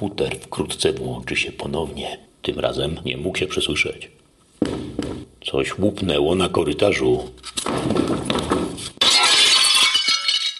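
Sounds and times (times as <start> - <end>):
speech: 0.0 - 8.5
glass shattering and spilling across the floor: 7.6 - 10.5
tinkling glass shards: 9.0 - 10.5.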